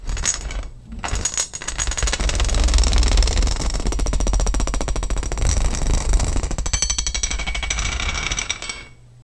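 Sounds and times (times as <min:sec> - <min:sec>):
violent rattling of small objects in an earthquake: 0:00.0 - 0:09.0.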